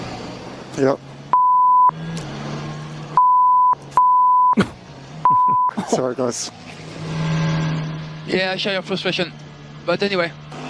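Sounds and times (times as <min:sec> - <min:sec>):
speech: 0:00.8 - 0:01.1, 0:05.9 - 0:06.7, 0:08.3 - 0:10.4
censor bleeps over swearing: 0:01.3 - 0:01.9, 0:03.2 - 0:04.6, 0:05.3 - 0:05.8.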